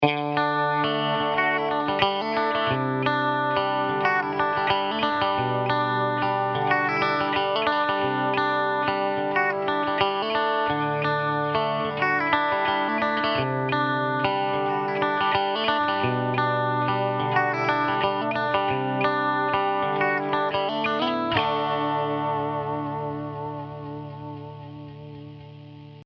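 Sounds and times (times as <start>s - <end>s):
pedal steel guitar lick: 0.0s - 26.0s.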